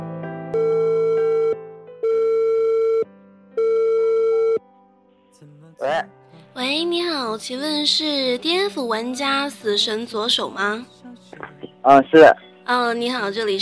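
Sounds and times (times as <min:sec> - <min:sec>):
telephone dialing beeps for a radio phone-in call: 0:00.6 - 0:04.6
telephone ringback tone of long steady electronic tones: 0:00.6 - 0:04.6
speech: 0:07.4 - 0:11.0, 0:11.8 - 0:13.6.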